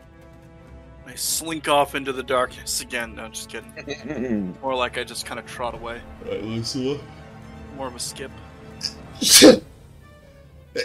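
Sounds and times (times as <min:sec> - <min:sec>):
speech: 0:01.1 - 0:07.2, 0:07.8 - 0:09.6
short soft vocal sound: 0:03.8 - 0:04.6
loud sneeze: 0:09.2 - 0:09.7.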